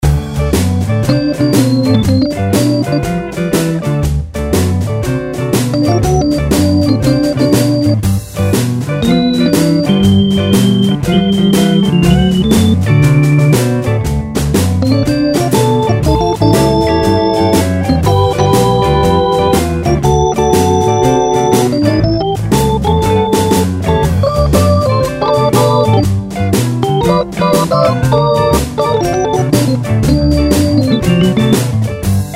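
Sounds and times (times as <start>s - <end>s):
blues keyboard solo in D: 0.0s - 32.3s.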